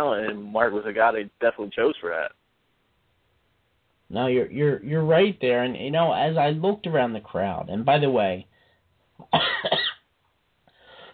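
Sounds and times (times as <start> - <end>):
speech: 0.0 - 2.4, 4.1 - 8.5, 9.2 - 9.9
harsh cough from someone getting over an illness: 9.2 - 10.1
softer breathy exhale: 10.7 - 11.1.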